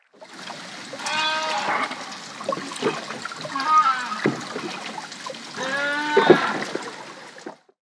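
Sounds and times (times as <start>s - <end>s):
southern right whales: 0.9s - 7.0s.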